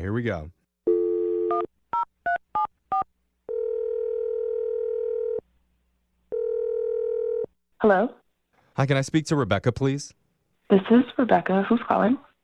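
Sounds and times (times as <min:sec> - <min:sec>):
speech: 0:00.0 - 0:00.6, 0:07.8 - 0:08.2, 0:08.8 - 0:12.3
steady telephone dial tone: 0:00.9 - 0:01.7, 0:02.3 - 0:05.4, 0:06.3 - 0:07.5
long telephone ringing tones: 0:00.9 - 0:05.4, 0:06.3 - 0:07.5.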